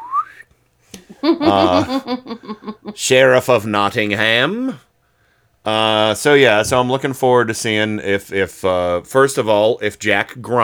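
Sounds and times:
slide whistle sound effect for an arrow being shot: 0:00.0 - 0:00.4
laughter: 0:01.1 - 0:03.0
speech: 0:01.2 - 0:04.9, 0:05.6 - 0:10.6
buzzy wavering voice-like tone: 0:01.4 - 0:02.1.

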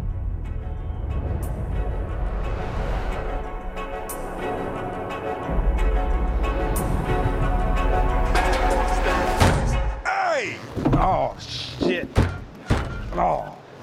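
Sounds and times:
music: 0:00.0 - 0:10.1
car door banging against a metal fire hydrant: 0:11.9 - 0:13.2.

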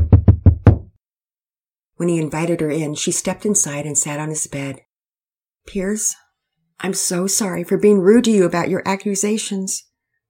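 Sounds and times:
soft knocks on a wooden door: 0:00.0 - 0:00.9
speech: 0:02.0 - 0:04.9, 0:05.6 - 0:06.2, 0:06.8 - 0:09.9.

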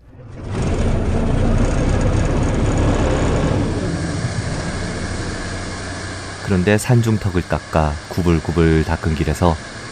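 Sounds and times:
tractor engine running on the road carrying fertilizer: 0:00.0 - 0:09.8
speech: 0:06.5 - 0:09.7.

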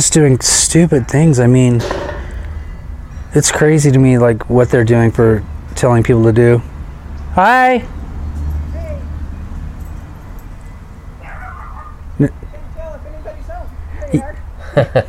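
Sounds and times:
speech: 0:00.0 - 0:02.1, 0:03.3 - 0:06.7, 0:07.4 - 0:08.0, 0:12.2 - 0:12.4, 0:14.1 - 0:15.0
dog barking: 0:11.2 - 0:12.0.

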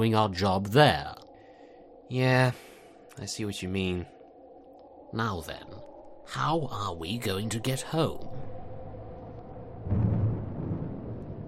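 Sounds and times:
speech: 0:00.0 - 0:01.2, 0:02.1 - 0:04.1, 0:05.1 - 0:08.5
low rolling thunder from an approaching storm: 0:09.5 - 0:11.4.

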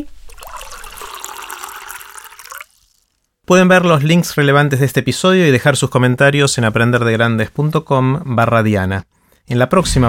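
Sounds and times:
water poured into a glass to drink: 0:00.2 - 0:03.3
speech: 0:03.5 - 0:10.0.

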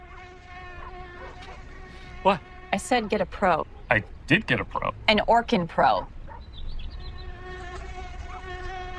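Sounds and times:
mosquitoes buzzing: 0:00.0 - 0:04.1, 0:06.3 - 0:08.9
speech: 0:02.2 - 0:06.2.

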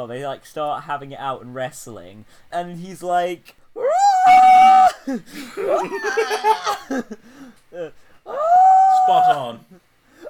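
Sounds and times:
speech: 0:00.0 - 0:09.8
person imitating a shrill monkey-like scream: 0:03.8 - 0:05.0, 0:05.7 - 0:06.8, 0:08.3 - 0:09.5
people laughing: 0:04.9 - 0:07.2.

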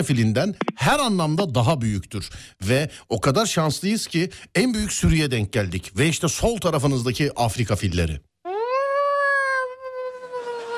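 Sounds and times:
speech: 0:00.0 - 0:08.3
voice imitating a blue whale mating call: 0:08.5 - 0:10.7.

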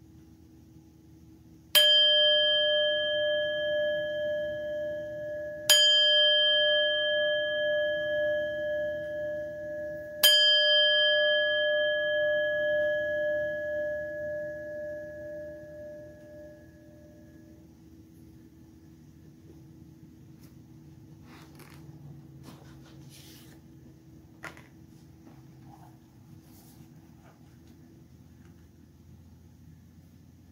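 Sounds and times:
bell struck to begin a reading: 0:01.8 - 0:17.6.

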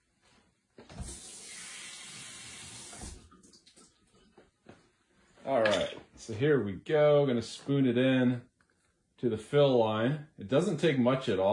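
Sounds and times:
tap water running to fill a coffee maker container: 0:00.8 - 0:04.5
speech: 0:05.5 - 0:08.5, 0:09.2 - 0:11.5.

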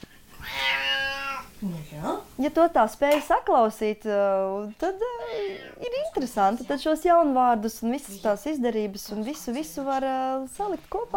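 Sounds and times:
cat meowing: 0:00.4 - 0:01.6
speech: 0:01.6 - 0:11.1.

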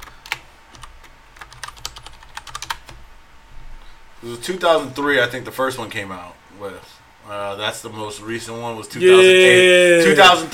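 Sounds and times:
fingers typing a search on a computer keyboard: 0:00.0 - 0:03.0
speech: 0:04.2 - 0:10.5.

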